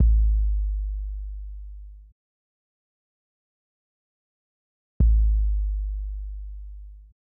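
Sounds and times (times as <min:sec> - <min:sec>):
kick drum: 0:00.0 - 0:00.8, 0:05.0 - 0:07.1.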